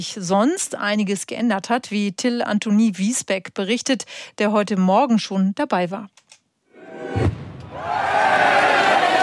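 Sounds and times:
speech: 0.0s - 6.2s
large crowd shouting while jumping into the town stream with fishing nets: 6.8s - 9.2s
deep booming cannon shot at the Fischertag in Memmingen: 7.1s - 7.8s.

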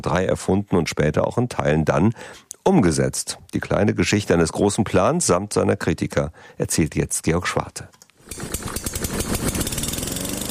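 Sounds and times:
speech: 0.0s - 9.3s
lawn mower engine sputtering and running: 8.2s - 10.4s.

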